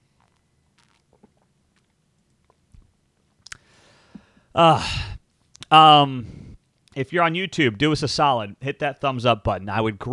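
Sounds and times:
person taking a quiet sip of water: 0.0 - 2.8, 3.4 - 4.3
brief gulp: 0.2 - 1.9
speech: 4.6 - 5.1, 5.7 - 6.4, 7.0 - 10.1.

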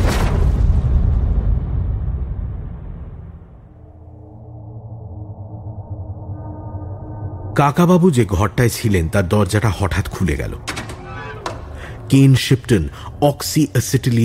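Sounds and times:
dynamite explosion: 0.0 - 7.6
steady low drone: 2.9 - 14.2
speech: 7.6 - 10.8, 12.1 - 14.2.

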